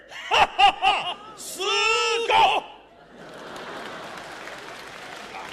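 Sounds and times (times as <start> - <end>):
laughter: 0.1 - 5.5
audience applause at a crosstalk comedy performance: 3.2 - 5.5.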